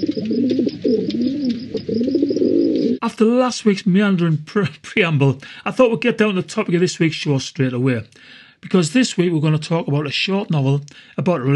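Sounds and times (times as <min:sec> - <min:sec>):
pigeon cooing: 0:00.0 - 0:03.0
speech: 0:03.0 - 0:11.5.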